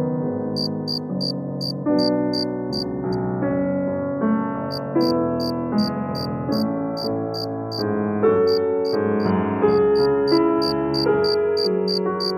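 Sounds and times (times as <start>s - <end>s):
soft dreamy piano melody: 0.0s - 12.3s
crickets chirping on a summer night: 0.6s - 2.5s, 4.7s - 6.3s, 7.0s - 7.8s, 8.5s - 9.0s, 9.8s - 12.3s.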